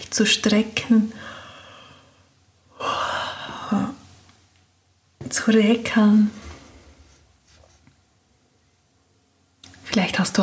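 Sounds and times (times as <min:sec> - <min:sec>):
speech: 0:00.0 - 0:01.4, 0:05.5 - 0:06.4
deep breathing during a guided meditation: 0:01.2 - 0:03.9.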